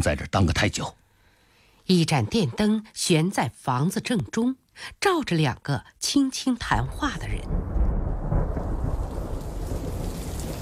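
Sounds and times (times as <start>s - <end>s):
speech: 0.0s - 1.0s, 1.9s - 7.8s
steady rain pouring outside window: 6.9s - 10.6s.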